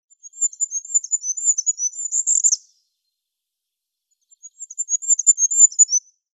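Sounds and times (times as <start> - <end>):
goldcrest Regulus regulus calling: 0.0 - 2.8, 4.2 - 6.2.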